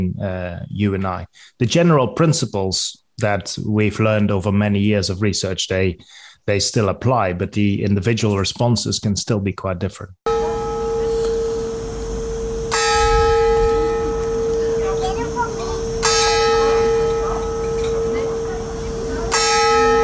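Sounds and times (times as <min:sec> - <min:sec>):
speech: 0:00.1 - 0:10.3
church bell tolling in Alicante Spain in the morning: 0:10.3 - 0:20.0
low murmur: 0:13.4 - 0:20.0.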